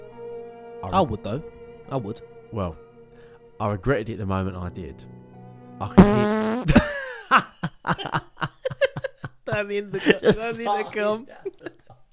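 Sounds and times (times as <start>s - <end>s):
speech: 0.8s - 2.8s, 3.6s - 5.2s, 5.8s - 8.3s, 9.6s - 11.7s
loud brassy echoey fart through an intercom: 6.0s - 6.7s.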